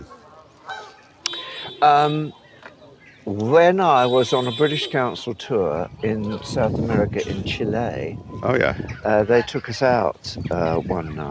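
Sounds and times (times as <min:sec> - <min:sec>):
flock of geese honking among swans: 0:00.0 - 0:06.4
speech: 0:01.8 - 0:02.4, 0:03.3 - 0:11.2.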